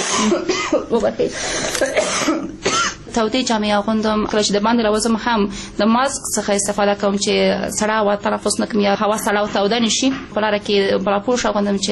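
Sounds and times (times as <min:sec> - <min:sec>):
ill person clearing throat: 0:00.0 - 0:01.0, 0:01.6 - 0:03.1
ill person coughing: 0:00.0 - 0:03.1
speech: 0:00.2 - 0:11.9.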